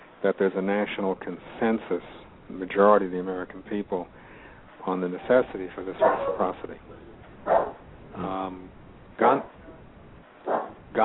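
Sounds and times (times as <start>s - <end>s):
hiss: 0.0s - 11.0s
speech: 0.2s - 4.2s, 4.8s - 9.5s
dog barking at somebody coming to the house: 6.0s - 6.6s, 7.4s - 7.8s, 9.2s - 9.8s, 10.4s - 10.8s.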